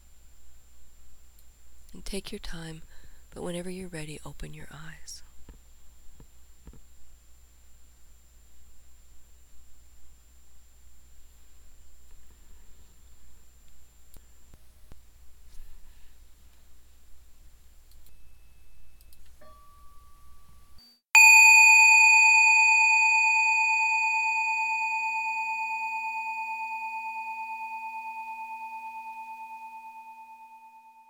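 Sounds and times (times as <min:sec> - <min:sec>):
speech: 0:02.0 - 0:05.3
meditation bell ringing: 0:18.2 - 0:31.0.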